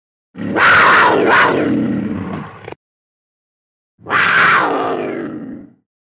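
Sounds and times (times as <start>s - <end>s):
puma harsh raspy scream: 0.4s - 2.5s, 4.0s - 5.7s.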